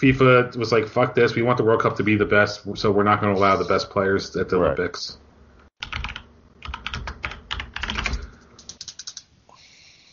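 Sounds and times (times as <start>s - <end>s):
speech: 0.0s - 5.2s
typing on a mechanical keyboard: 5.8s - 9.3s.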